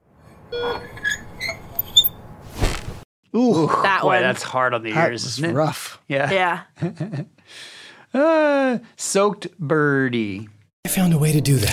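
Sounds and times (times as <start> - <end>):
short high-pitched squeaks: 0.4 - 2.2
speech: 0.5 - 1.0, 3.4 - 11.7.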